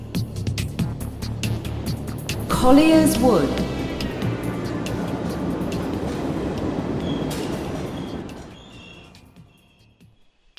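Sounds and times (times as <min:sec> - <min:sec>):
London Underground train rumbling as it arrives: 0:00.0 - 0:10.5
speech: 0:02.6 - 0:03.7
London Underground train brake squeals: 0:06.4 - 0:10.4.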